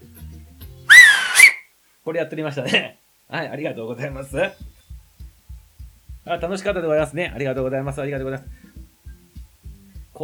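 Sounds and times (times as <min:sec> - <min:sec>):
loud shrill finger whistle: 0:00.9 - 0:01.7
speech: 0:02.1 - 0:04.7, 0:06.3 - 0:08.6.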